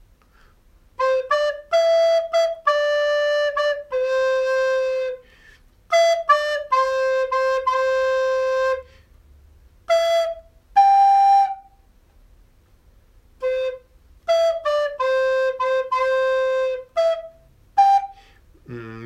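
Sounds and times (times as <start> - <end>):
recorder playing a simple melody: 1.0 - 5.2, 5.9 - 8.9, 9.9 - 11.8, 13.4 - 18.3.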